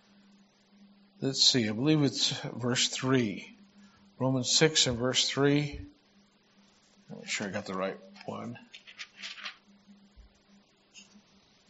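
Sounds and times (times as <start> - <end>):
speech: 1.2 - 3.6, 4.2 - 6.0, 7.1 - 8.8
book pages being turned: 8.2 - 9.6.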